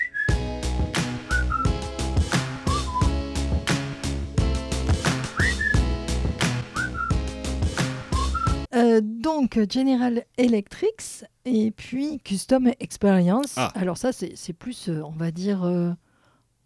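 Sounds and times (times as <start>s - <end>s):
whistled melody: 0.0s - 3.4s, 5.1s - 8.7s
punchy dance beat with thumping drums and bass: 0.3s - 8.7s
speech: 9.0s - 16.0s.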